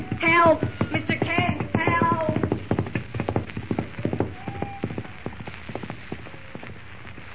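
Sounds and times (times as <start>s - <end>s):
horse galloping: 0.0s - 6.7s
speech: 0.3s - 1.0s.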